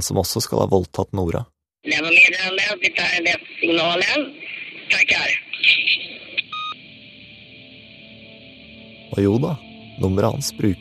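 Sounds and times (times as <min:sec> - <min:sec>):
speech: 0:00.0 - 0:06.0, 0:09.2 - 0:10.7
faint steady telephone line hum: 0:02.1 - 0:10.7
touch-tone telephone dialing as a phone number is keyed in: 0:06.5 - 0:06.8.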